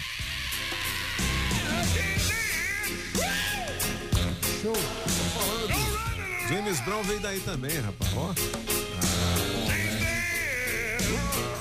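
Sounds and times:
male singer screaming in a played recording: 0.0s - 4.0s, 4.6s - 7.4s, 9.7s - 11.6s
loud band recording: 0.5s - 11.6s
speech: 4.6s - 5.0s, 6.5s - 8.8s.

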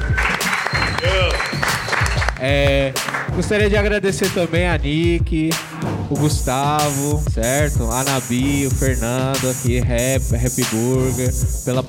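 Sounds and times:
audience at a live rap event cheering and applauding: 0.0s - 2.4s
speech: 2.4s - 11.8s.

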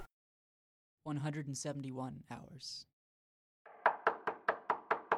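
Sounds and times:
speech: 1.1s - 2.9s
loud sharp knocking on a door: 3.7s - 5.1s.

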